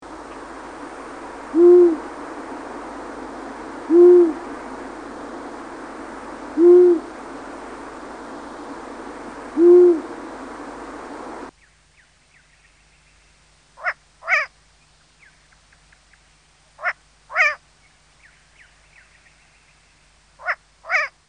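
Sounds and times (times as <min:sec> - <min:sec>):
long-eared owl: 0:01.5 - 0:07.9, 0:08.6 - 0:11.5, 0:13.8 - 0:14.5, 0:16.8 - 0:17.6, 0:20.4 - 0:21.2.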